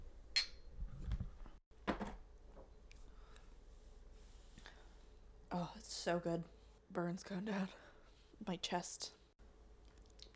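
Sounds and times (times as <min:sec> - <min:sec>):
drinking glasses clinking in a toast: 0:00.4 - 0:00.7
speech: 0:05.5 - 0:09.2.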